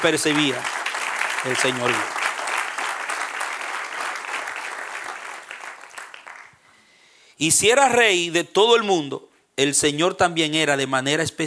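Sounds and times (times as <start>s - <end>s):
speech: 0.0s - 0.8s, 1.4s - 2.2s, 7.4s - 11.4s
crowd applauding: 0.0s - 6.6s.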